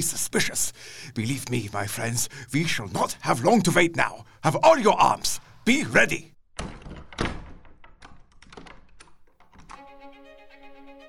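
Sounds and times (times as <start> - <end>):
speech: 0.0 - 7.3
key inserted into the lock of a hall door: 6.6 - 9.8.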